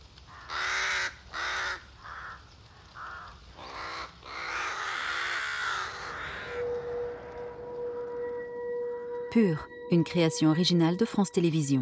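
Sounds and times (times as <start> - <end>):
brief sharp crackle: 0.0 - 11.2
crow cawing with harsh raspy calls: 0.2 - 8.4
speech: 9.4 - 11.8.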